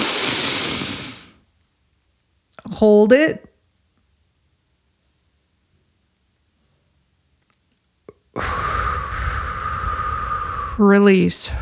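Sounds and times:
deep inhale through the nose: 0.0s - 1.4s, 8.4s - 10.8s
speech: 2.8s - 3.5s, 10.8s - 11.5s.

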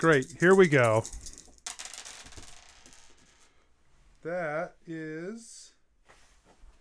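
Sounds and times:
speech: 0.0s - 1.4s, 4.2s - 5.6s
handful of dice clattering across a hard surface: 0.0s - 3.5s.

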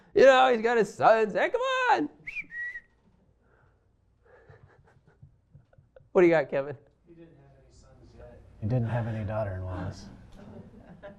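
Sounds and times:
speech: 0.2s - 2.6s, 6.2s - 7.4s, 8.6s - 10.2s
person whistling a quick two-part phrase: 2.2s - 3.0s
laughter: 4.3s - 6.0s, 9.7s - 11.1s.

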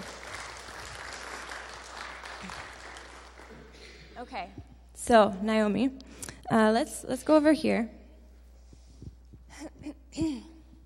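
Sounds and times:
room full of people applauding: 0.0s - 3.8s
speech: 4.2s - 8.0s, 10.2s - 10.5s.

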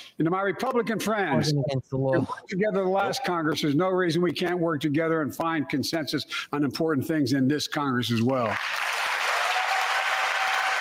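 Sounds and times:
speech: 0.2s - 8.9s
large audience applauding in a legislative chamber: 8.5s - 10.7s.

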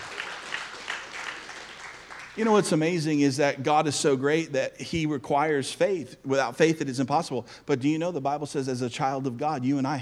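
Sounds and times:
large audience applauding: 0.0s - 2.6s
speech: 2.4s - 10.0s.

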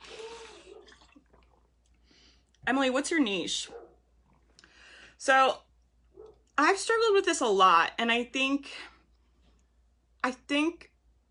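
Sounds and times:
water sloshing and gurgling in a bottle while drinking: 0.0s - 2.0s
speech: 2.7s - 3.8s, 5.2s - 5.6s, 6.6s - 8.9s, 10.2s - 10.9s.

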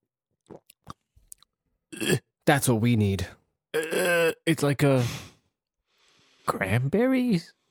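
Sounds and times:
person sipping dark red sour ale and swallowing: 0.4s - 2.2s, 3.8s - 4.4s
speech: 2.0s - 3.9s, 4.5s - 5.2s, 6.5s - 7.6s.

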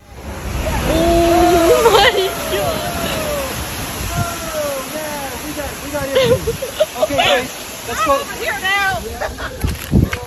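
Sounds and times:
huge ocean waves crashing: 0.0s - 10.2s
laughter: 0.4s - 10.2s
person's drawn-out voice crying out: 0.9s - 4.8s.

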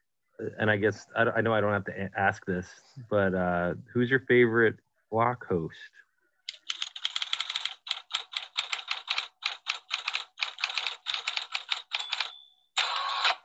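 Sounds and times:
speech: 0.4s - 6.0s
rapid typing on a computer keyboard: 6.5s - 13.0s.

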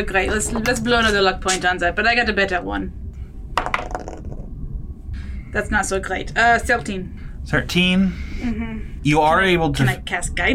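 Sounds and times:
speech: 0.0s - 3.0s, 5.5s - 10.5s
dice rolling on a tabletop during a role-playing game: 3.6s - 4.5s.

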